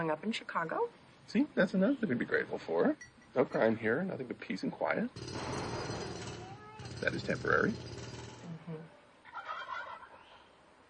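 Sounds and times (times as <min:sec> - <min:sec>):
speech: 0:00.0 - 0:06.2, 0:07.0 - 0:08.1
wild turkeys gobbling: 0:09.3 - 0:10.4.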